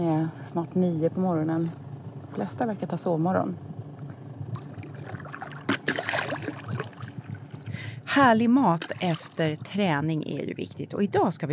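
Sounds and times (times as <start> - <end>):
speech: 0.0 - 1.8, 2.4 - 3.7, 8.2 - 11.5
small sailboat motor puttering: 0.0 - 10.2
water lapping and splashing: 4.0 - 10.0.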